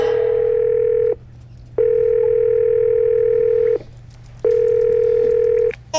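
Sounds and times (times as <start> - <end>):
telephone ringing tone heard through the line: 0.1 - 1.2, 1.8 - 3.8, 4.5 - 5.7.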